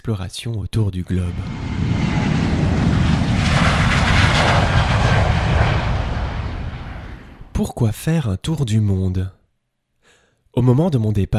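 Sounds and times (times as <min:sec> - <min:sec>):
speech: 0:00.0 - 0:01.7, 0:07.6 - 0:09.4, 0:10.6 - 0:11.3
jet-like roar of an airplane taking off: 0:01.1 - 0:07.6.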